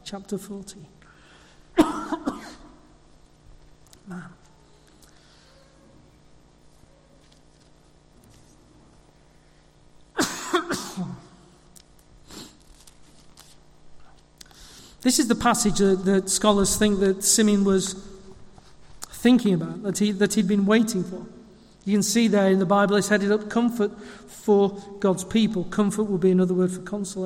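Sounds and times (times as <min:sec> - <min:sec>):
speech: 0:00.1 - 0:01.0, 0:04.1 - 0:04.4, 0:15.0 - 0:18.2, 0:19.2 - 0:27.2
throat clearing: 0:01.8 - 0:02.8, 0:10.2 - 0:11.3
person coughing: 0:01.8 - 0:02.9, 0:10.2 - 0:11.4.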